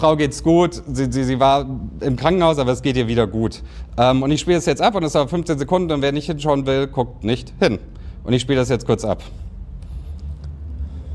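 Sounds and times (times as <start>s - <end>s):
speech: 0.0s - 9.5s
approaching car engine rumble: 7.4s - 11.1s.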